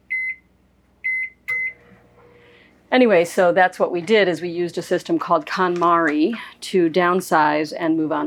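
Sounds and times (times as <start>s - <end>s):
microwave oven keypad beeps on a boat: 0.0s - 1.9s
microwave oven on a boat humming while heating coffee: 0.0s - 3.6s
microwave oven click on a boat: 1.1s - 1.8s
speech: 2.9s - 8.2s.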